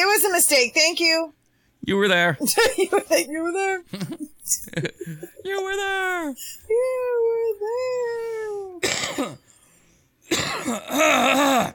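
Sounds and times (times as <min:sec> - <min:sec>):
speech: 0:00.2 - 0:09.4, 0:10.3 - 0:11.7
person clearing phlegm from the throat: 0:08.8 - 0:09.5, 0:10.3 - 0:11.7.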